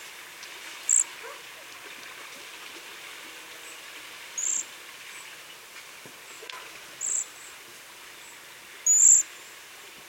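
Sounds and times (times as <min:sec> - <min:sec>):
faint background hiss: 0:00.0 - 0:10.0
Cedar waxwing Bombycilla cedrorum giving high-pitched hissing calls: 0:00.9 - 0:01.1, 0:04.4 - 0:04.7, 0:07.0 - 0:07.6, 0:08.2 - 0:09.6.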